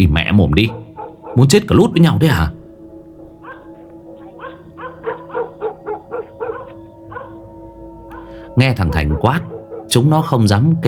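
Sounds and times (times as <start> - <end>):
speech: 0.0 - 0.8, 1.4 - 2.6, 8.6 - 10.8
dogs barking in a village: 0.3 - 10.4.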